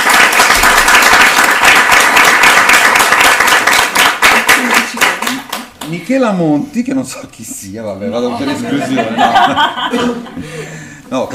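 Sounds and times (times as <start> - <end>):
audience applause for a novelist: 0.0 - 5.7
speech: 5.9 - 11.3
laughter: 8.3 - 10.8.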